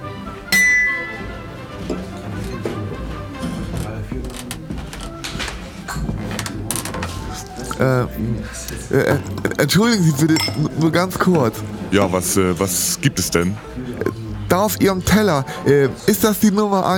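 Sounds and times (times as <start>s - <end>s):
glasses clinking in a toast: 0.5s - 1.5s, 9.1s - 11.1s
restaurant clatter: 0.5s - 12.2s
faint dish and cutlery clinks: 0.6s - 1.4s, 10.3s - 10.9s
murmuring voices in a restaurant: 1.2s - 16.5s
speech: 7.8s - 16.9s.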